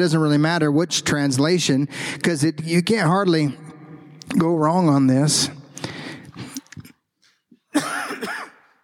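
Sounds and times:
speech: 0:00.0 - 0:03.7, 0:04.3 - 0:05.9
person clearing throat: 0:07.7 - 0:08.8
person coughing: 0:07.7 - 0:08.8.

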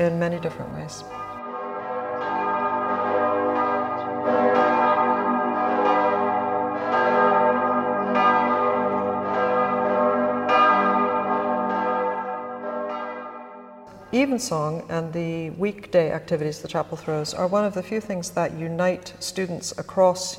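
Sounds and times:
speech: 0:00.0 - 0:01.3, 0:14.2 - 0:20.3
chapel bell tolling on Remembrance Day: 0:00.0 - 0:14.4.

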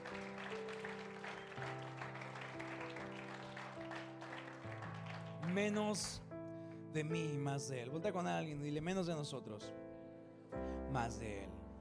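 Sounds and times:
crowd clapping at a church: 0:00.0 - 0:06.3
sustained keyboard chords: 0:00.0 - 0:11.7
speech: 0:05.5 - 0:06.2, 0:06.9 - 0:09.8, 0:10.9 - 0:11.6.

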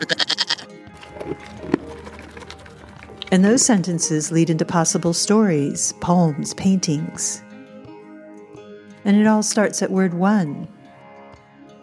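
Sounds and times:
goat bleating: 0:00.0 - 0:00.8
speech: 0:03.3 - 0:07.5, 0:09.1 - 0:10.8.

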